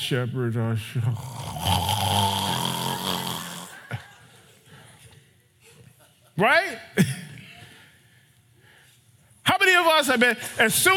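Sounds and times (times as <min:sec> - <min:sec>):
speech: 0:00.1 - 0:02.2, 0:06.4 - 0:07.1, 0:09.8 - 0:10.9
person mimicking a loud drawn-out snore: 0:01.1 - 0:04.0.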